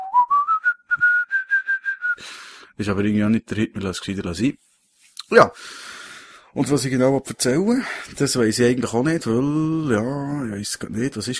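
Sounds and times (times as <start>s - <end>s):
person whistling clear evenly pulsed notes: 0.0s - 2.3s
speech: 2.2s - 4.6s, 5.3s - 5.9s, 6.6s - 11.3s.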